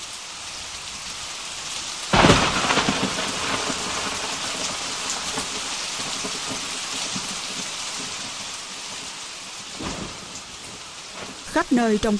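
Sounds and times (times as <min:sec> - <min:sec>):
heavy rain in a thunderstorm: 0:00.0 - 0:12.1
thunderclaps in a thunderstorm: 0:02.1 - 0:09.0, 0:09.6 - 0:11.6
speech: 0:11.6 - 0:12.1.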